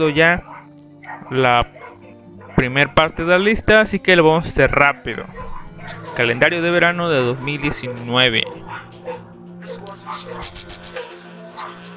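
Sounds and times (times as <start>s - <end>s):
speech: 0.0s - 0.5s, 1.3s - 1.8s, 2.6s - 8.8s
dogs barking: 0.3s - 3.1s, 4.7s - 11.9s.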